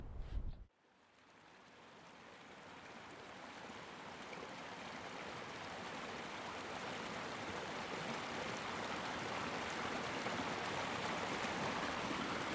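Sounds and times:
low rumble: 0.0s - 0.6s
river water flowing over stones: 1.0s - 12.5s.

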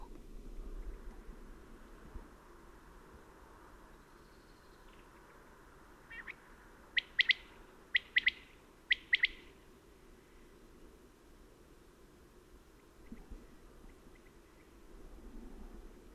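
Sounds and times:
outdoor hiss: 0.0s - 16.1s
common quail singing its three-note phrase: 6.1s - 6.4s, 7.0s - 9.5s.

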